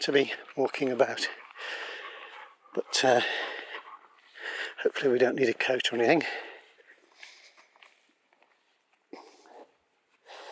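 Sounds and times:
speech: 0.0 - 1.9, 2.8 - 3.6, 4.8 - 6.5
gentle breeze on a warm summer late morning: 0.0 - 10.4
soft footsteps crunching outdoors: 0.0 - 10.4
dog panting while walking uphill outdoors: 0.4 - 6.7.

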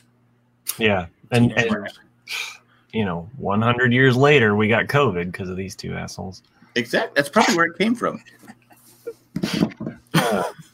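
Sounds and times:
faint steady hum: 0.0 - 10.7
speech: 0.8 - 9.6
person coughing: 9.4 - 10.6.

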